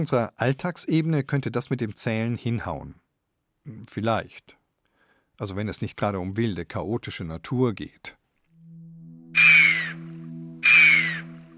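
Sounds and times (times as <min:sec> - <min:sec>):
speech: 0:00.0 - 0:03.0, 0:03.6 - 0:04.6, 0:05.4 - 0:08.2, 0:09.3 - 0:09.7
chamois warning whistles: 0:09.4 - 0:10.0, 0:10.6 - 0:11.3.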